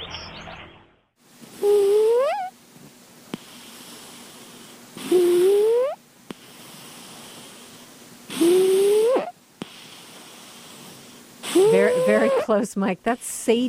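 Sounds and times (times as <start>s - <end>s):
sleeping 6-year-old cat snoring on a couch: 1.6s - 2.5s, 3.3s - 12.5s
speech: 12.1s - 13.6s.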